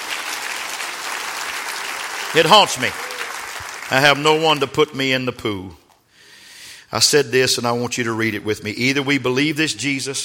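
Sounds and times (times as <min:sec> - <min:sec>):
congregation clapping: 0:00.0 - 0:05.1
speech: 0:02.3 - 0:03.0, 0:03.9 - 0:05.8, 0:06.9 - 0:10.2.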